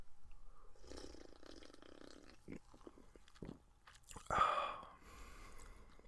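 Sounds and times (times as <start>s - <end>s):
person sipping a freshly opened Diet Coke: 0.8s - 6.0s
gulp and swallow of Diet Coke: 0.9s - 4.6s.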